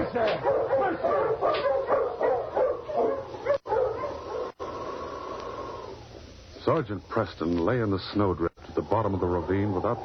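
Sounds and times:
pack of sled dogs barking and yipping: 0.0s - 4.6s
speech: 0.1s - 2.0s, 6.7s - 10.0s.

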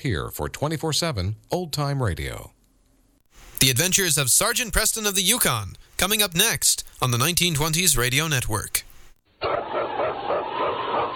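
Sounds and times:
speech: 0.0s - 2.6s, 3.6s - 9.6s
husky sled dog barking: 9.4s - 11.1s.

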